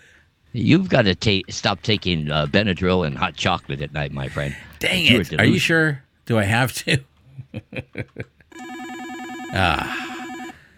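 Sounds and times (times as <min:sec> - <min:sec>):
speech: 0:00.5 - 0:08.4, 0:09.5 - 0:10.0
laughter: 0:07.3 - 0:08.4
telephone ringing with warbling electronic tone: 0:08.5 - 0:10.7.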